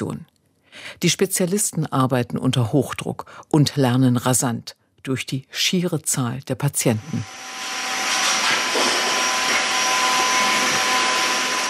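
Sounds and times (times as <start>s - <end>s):
speech: 0.0s - 7.6s
faint tonal hums: 7.0s - 11.6s
steady mechanical whirring of 3D printers: 7.2s - 11.6s.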